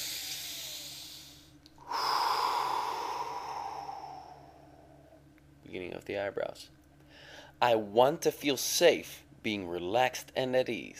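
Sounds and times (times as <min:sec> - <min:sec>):
deep breath in a calm relaxation exercise: 0:00.0 - 0:05.2, 0:07.0 - 0:07.6
long breathy exhale: 0:00.0 - 0:05.2
speech: 0:05.7 - 0:06.8, 0:07.6 - 0:10.9.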